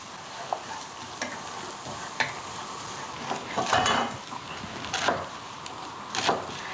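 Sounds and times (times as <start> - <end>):
oil sizzling in a pan as food fries: 0.0 - 6.7.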